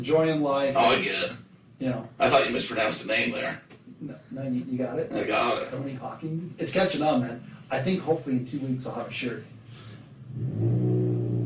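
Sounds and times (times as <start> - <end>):
speech: 0.0 - 9.5
car engine revving: 10.3 - 11.4.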